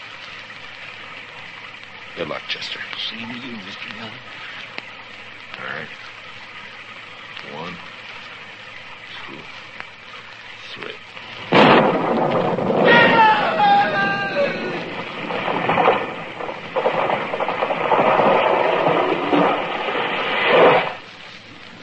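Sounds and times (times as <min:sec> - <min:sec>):
speech: 0:02.2 - 0:04.6, 0:05.6 - 0:06.2, 0:07.4 - 0:07.9, 0:10.8 - 0:11.0
thunder crack from lightning striking a tree: 0:11.4 - 0:21.0.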